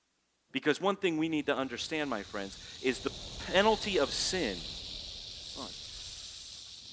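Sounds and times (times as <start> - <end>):
speech: 0.5 - 4.8
snake hissing: 1.4 - 6.9.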